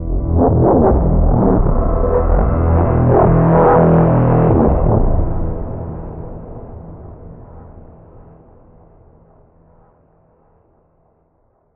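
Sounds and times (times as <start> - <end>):
vault warp sound effect: 0.0 - 6.6.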